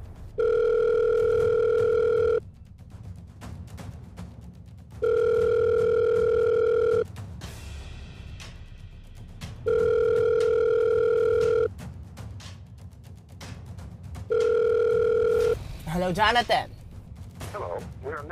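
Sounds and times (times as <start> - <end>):
telephone ringback tone heard through a phone earpiece: 0.4 - 2.4, 5.0 - 7.1, 9.7 - 11.7, 14.3 - 15.6
speech: 16.1 - 16.7.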